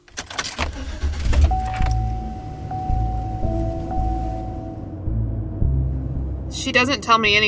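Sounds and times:
car engine rumble driving off through a residential neighborhood: 0.0s - 7.4s
clunks and rustles: 0.1s - 2.2s
thin steady whine: 1.6s - 7.3s
speech: 6.6s - 7.4s.

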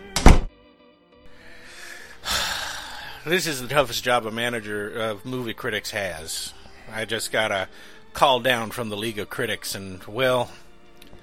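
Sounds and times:
office door pushed shut with a solid thunk: 0.1s - 0.5s
speech: 3.2s - 10.6s.

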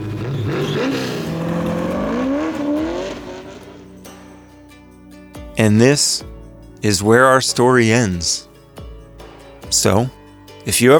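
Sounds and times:
1970 Mercury Cyclone engine revving: 0.0s - 4.6s
speech: 5.6s - 8.5s, 9.7s - 10.9s.

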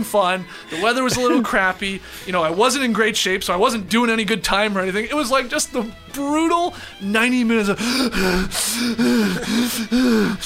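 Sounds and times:
speech: 0.0s - 10.4s
person imitating heavy panting while running: 7.8s - 10.4s.

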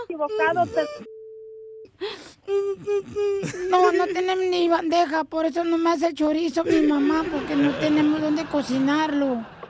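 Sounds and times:
speech: 0.1s - 1.2s, 1.8s - 9.6s
steady mid-pitched telephone busy tone after hang-up: 1.0s - 1.9s
laughter: 3.2s - 4.4s, 6.7s - 9.6s.

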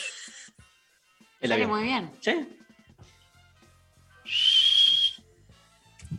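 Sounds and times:
speech: 1.4s - 2.6s
person whistling an imitation of an airplane: 4.3s - 5.2s.

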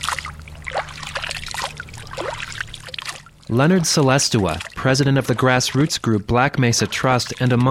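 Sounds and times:
faint low hum: 0.0s - 7.6s
spring water trickling through a farmer's fingers from a village spring: 0.0s - 7.6s
speech: 3.5s - 7.6s.

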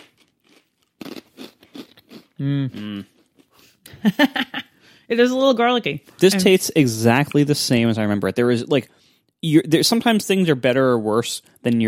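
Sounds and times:
crunching a rye chip from a snack mix: 0.0s - 2.3s
speech: 2.4s - 3.2s, 4.0s - 11.8s
laughter: 4.0s - 4.7s.

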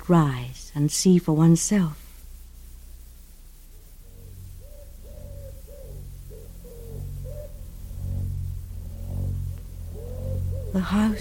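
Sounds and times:
speech: 0.1s - 2.0s, 10.8s - 11.1s
low continuous rumbling hum: 1.6s - 11.1s
wood pigeons cooing: 4.0s - 11.1s.

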